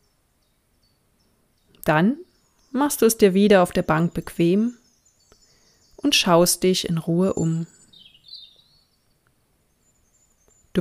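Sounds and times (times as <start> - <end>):
birds chirping and singing: 0.0 - 10.7
speech: 1.8 - 4.8, 6.0 - 7.8.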